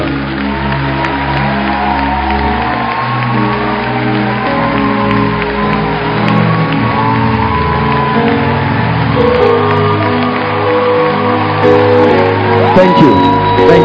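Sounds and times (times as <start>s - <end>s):
large audience clapping and cheering: 0.0s - 13.8s
music playing: 0.0s - 13.8s.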